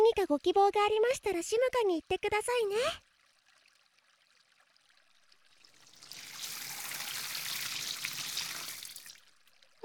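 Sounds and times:
speech: 0.1s - 3.0s
water pouring over a person's head while washing hair: 5.3s - 9.7s.

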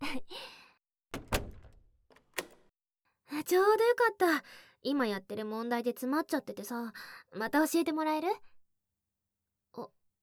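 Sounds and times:
door being opened: 1.1s - 2.7s
door making dull clunks and rattling knocks: 1.2s - 2.6s
speech: 3.4s - 8.5s, 9.8s - 10.0s.

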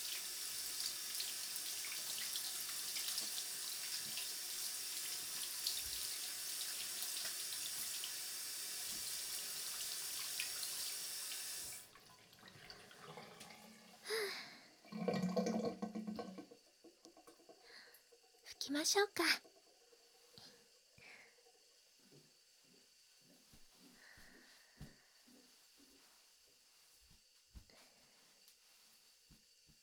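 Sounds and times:
tap water running into a sink while rinsing: 0.0s - 22.3s
speech: 18.8s - 19.5s.

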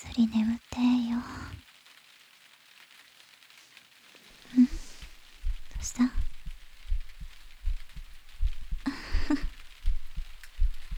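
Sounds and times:
speech: 0.0s - 1.4s
soft rustle of fabric: 4.2s - 10.9s
steady low heartbeat thumping: 4.6s - 10.9s.

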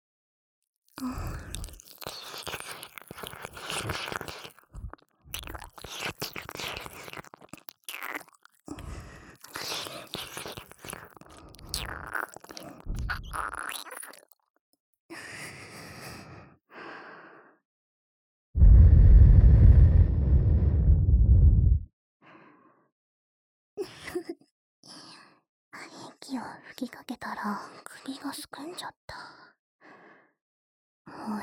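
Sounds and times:
speech: 1.0s - 1.5s, 26.7s - 29.2s
wet licking and nibbling mouth sounds on an ear: 1.2s - 8.6s, 9.4s - 14.4s
brief low thump: 18.6s - 21.9s.

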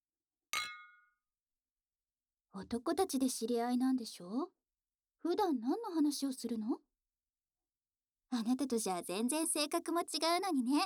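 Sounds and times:
glasses clinking in a toast at a shared meal: 0.6s - 1.1s
speech: 2.6s - 4.6s, 5.2s - 6.8s, 8.3s - 10.8s.

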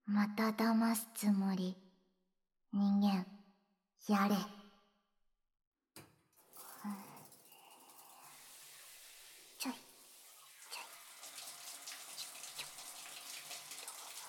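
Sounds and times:
speech: 0.1s - 1.8s, 2.7s - 3.4s, 4.0s - 4.6s, 9.6s - 9.8s
hot water gushing from a tap: 6.4s - 14.2s.

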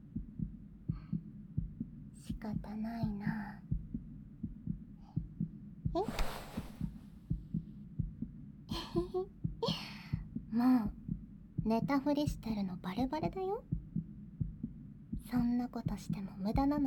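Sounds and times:
steady rapid heartbeat thumping: 0.0s - 16.8s
speech: 2.4s - 3.7s, 6.0s - 6.4s, 11.7s - 13.7s, 15.3s - 16.8s
rustling: 6.0s - 7.2s.

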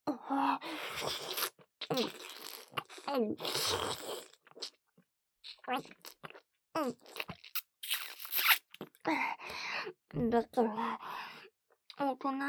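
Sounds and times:
speech: 0.3s - 2.2s, 3.1s - 4.2s, 5.7s - 6.1s, 6.8s - 7.1s, 10.2s - 11.1s, 12.2s - 12.4s
wet slurping mouth sounds full of saliva during oral sex: 0.8s - 4.8s, 7.0s - 8.9s.

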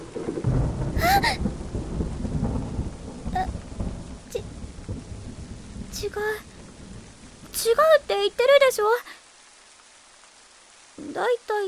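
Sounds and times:
low rolling thunder: 0.0s - 9.0s
steady rainfall: 0.0s - 11.6s
speech: 6.1s - 6.5s, 7.6s - 9.2s, 11.2s - 11.6s.

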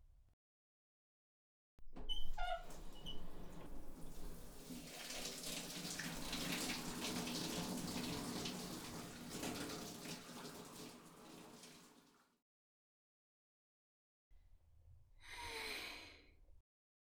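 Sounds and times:
shower spraying water: 2.1s - 12.2s
breathy exhale: 15.2s - 16.3s.

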